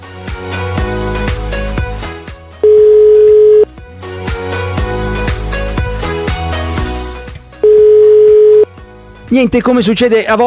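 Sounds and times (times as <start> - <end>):
busy music: 0.0 - 10.4
telephone ringback tone of an unanswered dialed call: 2.6 - 3.7, 7.6 - 8.7
speech: 9.3 - 10.4.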